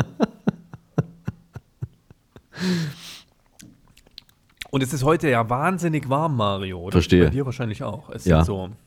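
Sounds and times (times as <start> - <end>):
speech: 0.0 - 0.2, 4.7 - 8.8
breathy satisfied exhale: 2.5 - 3.4
person gulping beer kept on a balcony: 3.3 - 4.8.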